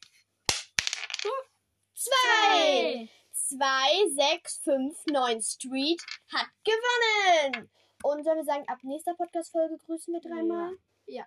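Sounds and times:
dice hitting a hard surface and tumbling: 0:00.0 - 0:01.4, 0:05.9 - 0:06.4
speech: 0:01.2 - 0:11.2.

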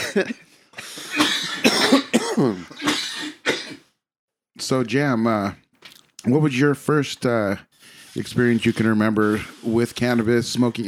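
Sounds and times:
speech: 0:00.2 - 0:00.5, 0:02.4 - 0:02.8, 0:04.6 - 0:05.6, 0:06.2 - 0:10.8
people coughing from smoke: 0:01.1 - 0:03.8.

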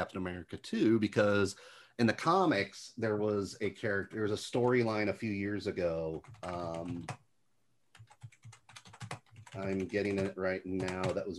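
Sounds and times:
speech: 0:00.0 - 0:07.2, 0:09.6 - 0:11.3
computer keyboard typing: 0:06.1 - 0:07.2, 0:07.9 - 0:11.3.

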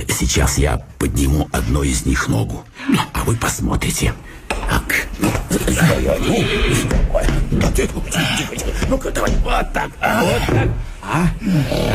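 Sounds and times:
speech: 0:00.0 - 0:11.9
horses snorting: 0:05.2 - 0:08.6
horses whinnying: 0:05.9 - 0:07.2.

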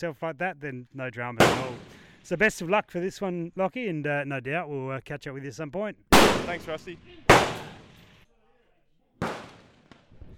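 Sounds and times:
speech: 0:00.0 - 0:07.6
gunshots on a shooting competition stage: 0:01.4 - 0:02.2, 0:06.1 - 0:08.2, 0:09.2 - 0:10.2.

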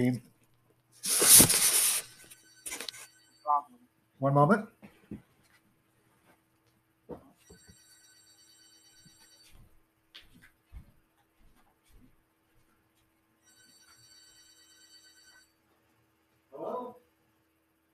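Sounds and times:
speech: 0:00.0 - 0:00.3, 0:04.2 - 0:05.2
telephone ringing with bright steady electronic tone: 0:01.1 - 0:03.7, 0:07.4 - 0:09.6, 0:13.4 - 0:15.6.

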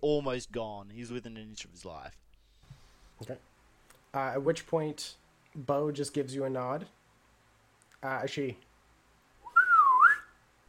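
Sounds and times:
speech: 0:00.0 - 0:02.2, 0:03.2 - 0:03.5, 0:04.1 - 0:07.0, 0:08.0 - 0:08.7
woman whistling: 0:09.5 - 0:10.4.

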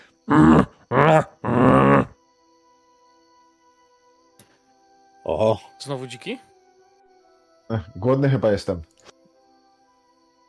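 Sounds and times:
speech: 0:00.3 - 0:00.7, 0:05.4 - 0:06.5, 0:07.7 - 0:09.1
human voice imitating a bear's growl: 0:00.3 - 0:02.2.

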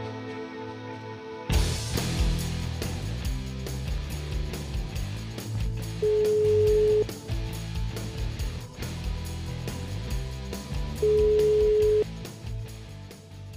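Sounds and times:
busy music bed: 0:00.0 - 0:13.5
telephone ringing tone: 0:06.0 - 0:07.0, 0:11.0 - 0:12.0.

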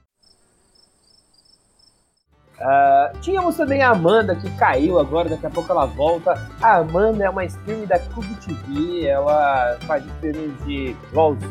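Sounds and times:
crickets chirping in a shrill high-pitched trill: 0:00.0 - 0:02.3
speech: 0:02.6 - 0:11.4.

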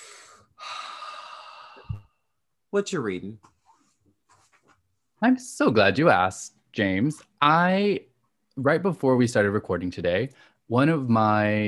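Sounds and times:
deep breath inhaled: 0:00.0 - 0:02.1
speech: 0:02.7 - 0:03.5, 0:05.2 - 0:11.6.

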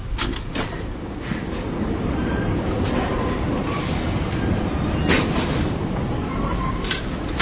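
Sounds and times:
metro train rumbling through Opéra station in Paris: 0:00.0 - 0:07.4
faint metallic squeals of metro train: 0:02.1 - 0:07.1.

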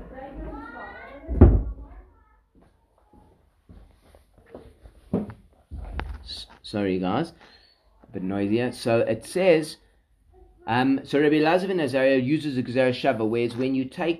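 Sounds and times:
door thudding shut: 0:01.3 - 0:01.8
speech: 0:06.7 - 0:07.5, 0:08.1 - 0:09.8, 0:10.7 - 0:14.1.

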